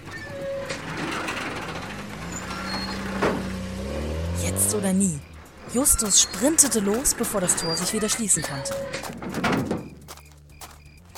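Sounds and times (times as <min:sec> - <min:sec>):
heavy vehicle engine starting and droning: 0:00.0 - 0:11.1
speech: 0:04.7 - 0:09.8.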